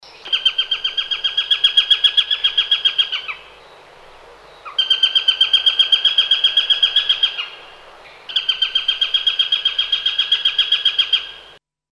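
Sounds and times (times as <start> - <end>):
Eurasian sparrowhawk calling with rapid sharp kek notes: 0.0 - 11.6.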